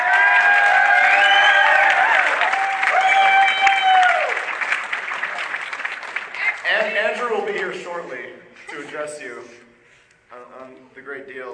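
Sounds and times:
crowd cheers and whoops: 0:00.0 - 0:04.6
large crowd applauding the makers of a film: 0:00.0 - 0:07.7.

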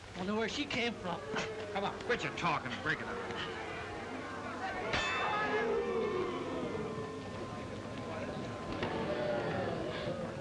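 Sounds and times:
crowd murmur with indistinct voices: 0:00.1 - 0:10.3
speech: 0:00.2 - 0:03.7
boxing ring bell clanging to end a round: 0:04.9 - 0:05.8.

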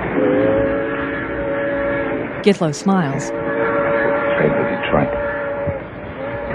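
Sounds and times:
train whistle: 0:00.1 - 0:02.4, 0:03.3 - 0:06.5
speech: 0:02.5 - 0:03.4, 0:04.4 - 0:05.2.

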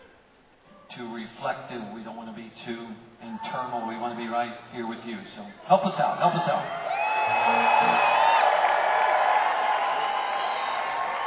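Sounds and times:
speech: 0:00.9 - 0:08.2
large concert crowd screaming and cheering: 0:06.3 - 0:11.2
high-pitched shrieks and whoops from concert crowd: 0:06.7 - 0:11.2.

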